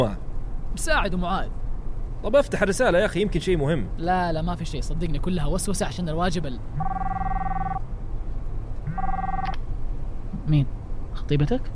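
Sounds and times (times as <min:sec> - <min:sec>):
speech: 0:00.0 - 0:01.6, 0:02.2 - 0:07.3, 0:10.5 - 0:11.7
low constant hum: 0:00.0 - 0:11.7
phone ringing with an incoming call: 0:06.8 - 0:07.8, 0:08.9 - 0:09.6.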